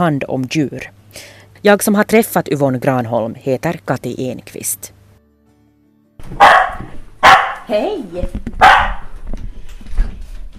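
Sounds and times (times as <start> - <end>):
speech: 0.0 - 5.0, 6.2 - 7.0, 7.7 - 9.4
dog barking sharply at a visiting stranger: 6.4 - 7.7, 8.6 - 9.1.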